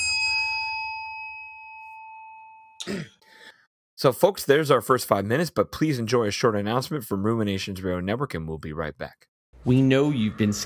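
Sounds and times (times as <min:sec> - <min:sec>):
bell ding marking time: 0:00.0 - 0:02.9
speech: 0:02.8 - 0:03.2, 0:04.0 - 0:10.6.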